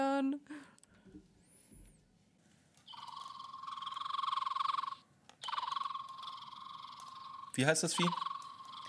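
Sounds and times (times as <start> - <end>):
red-bellied flycatcher buzzy trilling call: 2.9 - 8.8
speech: 7.6 - 8.3.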